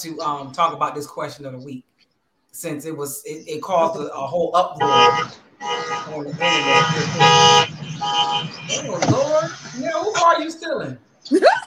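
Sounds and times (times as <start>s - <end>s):
speech: 0.0s - 1.9s, 2.5s - 11.5s
fainter traffic noise: 0.0s - 11.6s
loud sustained car horn blasts: 4.8s - 9.2s.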